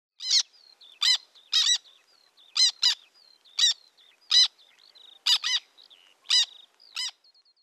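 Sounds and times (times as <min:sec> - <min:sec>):
black tern Chlidonias niger calling: 0:00.2 - 0:01.8, 0:02.6 - 0:03.0, 0:03.6 - 0:04.6, 0:05.2 - 0:07.2.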